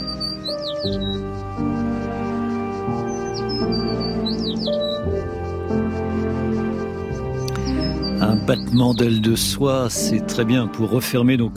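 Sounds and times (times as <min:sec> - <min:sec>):
bird singing with high quick chirps and sweeping whistles: 0:00.0 - 0:01.4, 0:02.9 - 0:05.3, 0:07.4 - 0:09.3
sustained instrumental music with slowly changing notes: 0:00.0 - 0:11.5
speech: 0:00.5 - 0:02.0, 0:08.5 - 0:11.5.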